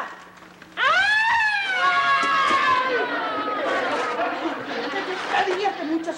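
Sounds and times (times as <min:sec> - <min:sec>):
ambulance siren wailing: 0:00.8 - 0:04.1
laughter: 0:02.1 - 0:06.1.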